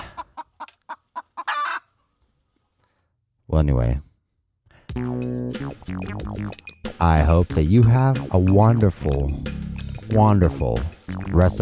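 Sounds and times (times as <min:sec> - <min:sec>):
chicken clucking: 0:00.0 - 0:02.1
speech: 0:03.5 - 0:04.1, 0:05.0 - 0:11.5.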